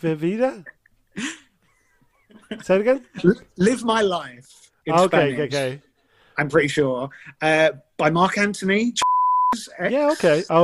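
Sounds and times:
speech: 0.0s - 1.3s, 2.4s - 10.6s
high-pitched censor beep: 9.0s - 9.6s.

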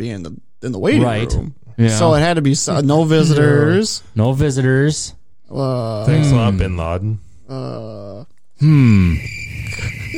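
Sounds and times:
speech: 0.0s - 10.1s
cricket chirping in a steady high trill: 8.7s - 10.1s.

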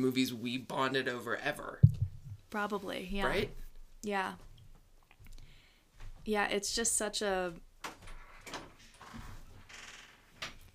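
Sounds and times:
speech: 0.0s - 4.5s, 6.3s - 7.7s
wooden cabin door creaking open or shut: 7.8s - 10.7s.

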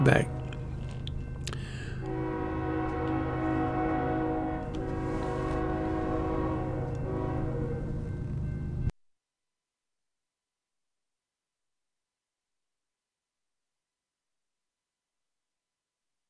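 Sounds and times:
speech: 0.0s - 0.4s
passing train horn blast: 0.0s - 8.9s.

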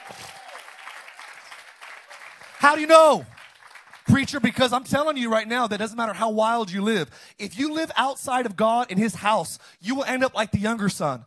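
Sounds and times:
audience applause: 0.0s - 4.2s
speech: 2.6s - 3.4s, 4.1s - 11.2s.

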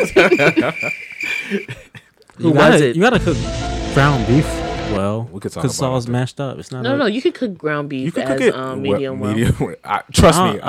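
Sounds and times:
crickets chirping: 0.0s - 1.7s
chuckling laughter: 0.0s - 2.0s
speech: 0.1s - 10.6s.

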